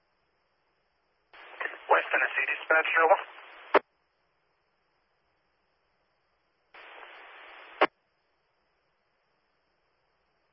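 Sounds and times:
railroad dispatch radio static crackling: 1.4 - 3.8, 6.8 - 7.9
speech: 2.1 - 3.3.

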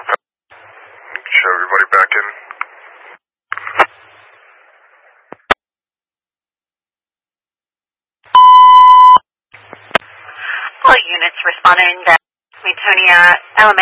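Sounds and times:
radio static: 0.0 - 5.6, 9.6 - 13.8
speech: 1.4 - 2.5, 11.7 - 12.2, 12.9 - 13.8
building alarm electronic beep: 8.4 - 9.2.

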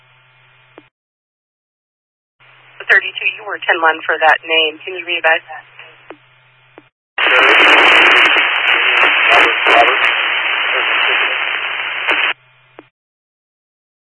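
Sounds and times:
garbled voice on a two-way radio: 2.8 - 6.0, 7.2 - 12.4
loud harsh static on a two-way radio transmission: 2.8 - 12.9
speech: 2.9 - 6.2.

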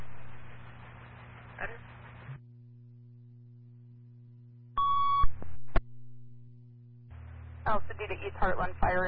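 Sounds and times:
radio static: 0.0 - 2.4, 7.2 - 9.0
steady low hum: 0.0 - 9.0
speech: 1.6 - 2.0, 7.7 - 9.0
fire dispatch radio alert tones: 4.8 - 5.3.

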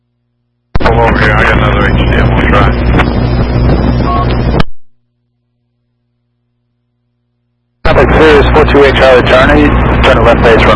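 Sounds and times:
radio squelch break burst of rushing static: 0.8 - 4.9, 7.8 - 10.7
speech: 1.0 - 2.8, 8.2 - 10.7.

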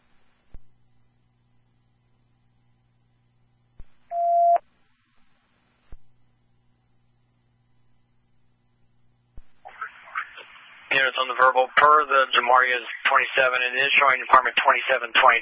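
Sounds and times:
telephone dialing tones as an emergency dispatcher calls back a caller: 4.1 - 4.6
speech: 11.0 - 15.4.

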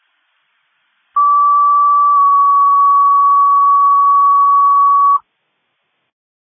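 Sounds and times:
city fire dispatch alert tone for a rescue call: 1.2 - 5.2.

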